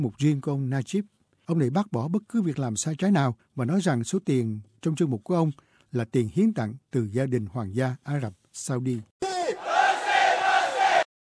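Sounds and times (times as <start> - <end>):
speech: 0.0 - 9.2
angry crowd chanting in Malay at a protest: 9.2 - 11.1.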